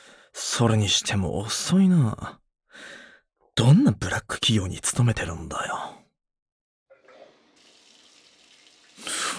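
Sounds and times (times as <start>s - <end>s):
speech: 0.6s - 3.0s, 3.6s - 6.0s
shower water spraying: 7.1s - 9.3s.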